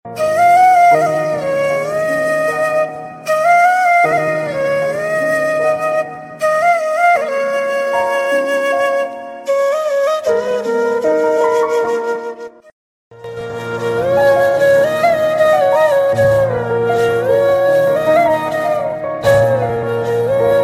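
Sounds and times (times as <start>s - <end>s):
sad flute melody: 0.1s - 20.6s.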